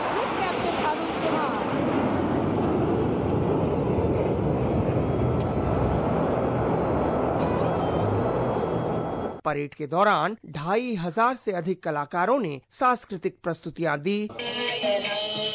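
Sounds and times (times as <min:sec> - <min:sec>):
Rafale, Sukhoi 30 and MiG 29 jets in a parade flypast: 0:00.0 - 0:09.4
speech: 0:09.5 - 0:15.4.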